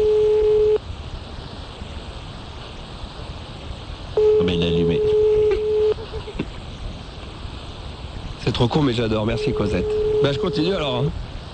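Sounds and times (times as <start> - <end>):
landline phone ringing tone heard through the receiver: 0.0 - 0.8, 4.2 - 6.2, 9.3 - 11.0
faint landline hiss: 0.0 - 11.5
speech: 8.6 - 11.3.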